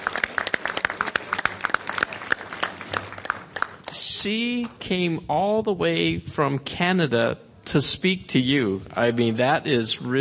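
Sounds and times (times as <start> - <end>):
audience applause after a presentation about a new technology: 0.0 - 4.0
speech: 4.2 - 10.1.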